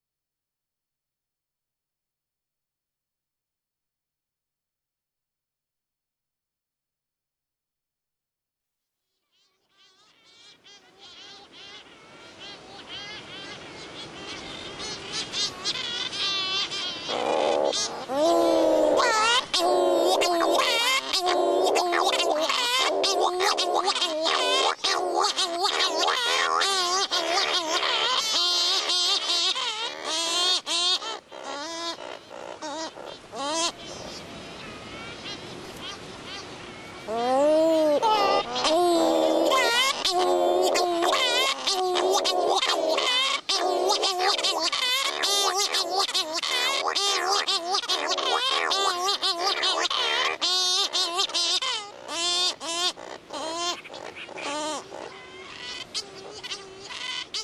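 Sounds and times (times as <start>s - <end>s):
Cory's shearwater calling in the Azores: 12.4s - 57.4s.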